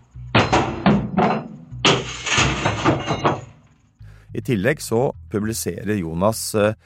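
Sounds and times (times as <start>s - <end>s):
stones thrown against a house wall: 0.3s - 3.7s
speech: 4.4s - 6.8s.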